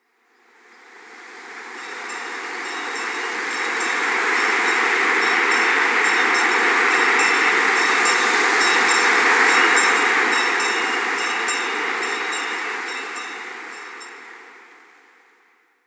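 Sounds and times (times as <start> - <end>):
strong winds: 0.7 - 15.2
bell ringing: 1.8 - 14.2.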